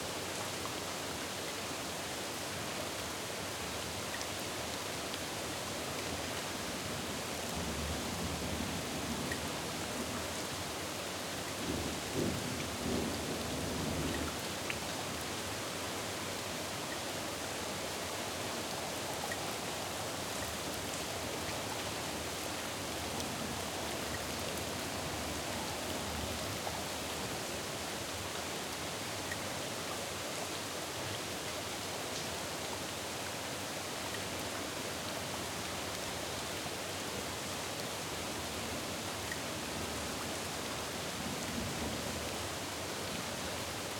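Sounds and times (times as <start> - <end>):
medium rain in a city: 0.0 - 43.9.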